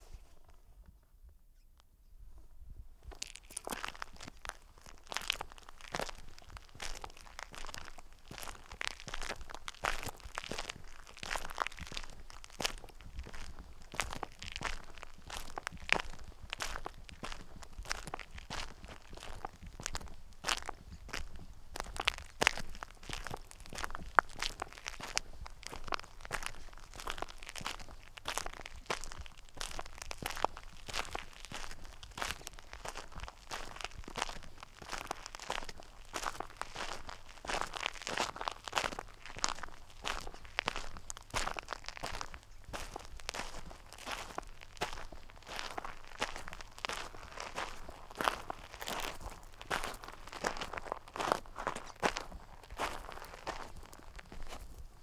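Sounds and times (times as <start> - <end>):
footsteps walking outdoors at La Silla: 3.1 - 55.0.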